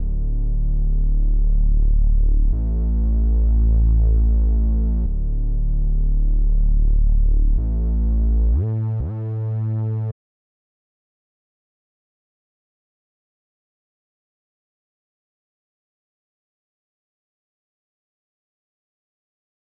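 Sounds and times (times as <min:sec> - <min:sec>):
reese bass melody loop in D minor: 0:00.0 - 0:10.1.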